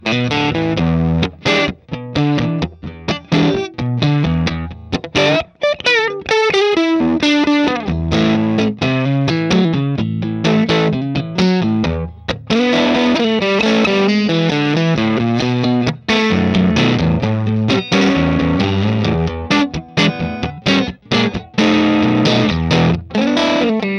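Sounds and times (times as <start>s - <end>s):
ECC81 6L6 blues: 0.0s - 23.9s.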